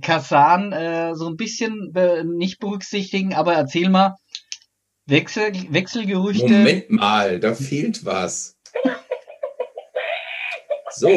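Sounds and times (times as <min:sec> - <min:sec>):
speech: 0:00.0 - 0:04.2, 0:05.1 - 0:09.0
laughter: 0:06.4 - 0:11.1
chicken-clucking jingle introducing a volleyball news segment: 0:09.0 - 0:11.1.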